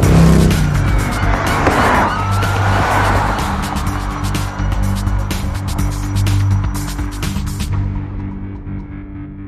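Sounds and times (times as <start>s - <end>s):
tires screeching in a vehicle chase: 0.0s - 6.9s
motorcycle engines roaring in a police chase: 0.0s - 7.8s.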